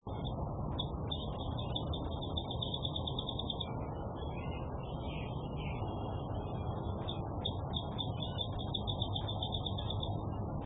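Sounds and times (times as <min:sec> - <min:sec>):
olive sparrow calling: 0:00.1 - 0:10.2.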